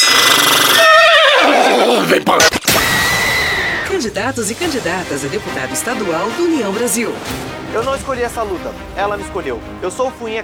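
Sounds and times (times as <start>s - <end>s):
horse whinnying: 0.0s - 4.0s
speech: 4.0s - 10.4s.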